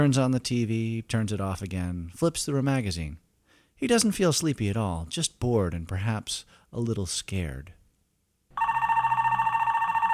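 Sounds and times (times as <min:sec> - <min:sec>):
speech: 0:00.0 - 0:03.2, 0:03.8 - 0:07.8
telephone ringing at home in the early evening: 0:08.6 - 0:10.1.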